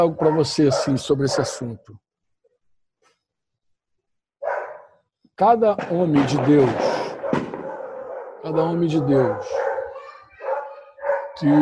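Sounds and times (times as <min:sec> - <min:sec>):
dog barking: 0:00.0 - 0:01.8, 0:04.4 - 0:05.0, 0:07.1 - 0:11.6
speech: 0:00.0 - 0:02.1, 0:05.4 - 0:07.4, 0:08.4 - 0:09.6, 0:11.4 - 0:11.6.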